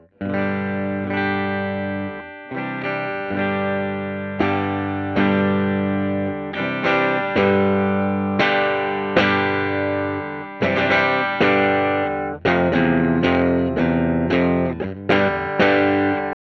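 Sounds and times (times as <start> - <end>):
light overdrive through amps: 0.0 - 16.4.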